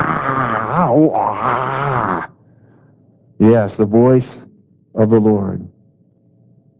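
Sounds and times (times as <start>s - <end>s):
person's voice imitating a lion's roar: 0.0s - 2.3s
speech: 1.0s - 1.6s, 3.4s - 5.7s.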